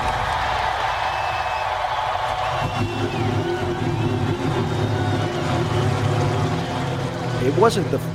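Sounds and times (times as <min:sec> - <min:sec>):
constant crowd noise: 0:00.0 - 0:08.1
race car engines starting and revving: 0:01.6 - 0:08.1
speech: 0:07.5 - 0:08.1.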